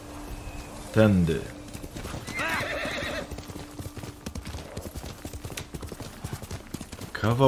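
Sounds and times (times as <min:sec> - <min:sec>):
horse hooves clip-clopping: 0:00.0 - 0:07.4
speech: 0:01.0 - 0:01.6, 0:07.2 - 0:07.4
horse whinnying: 0:02.2 - 0:03.3.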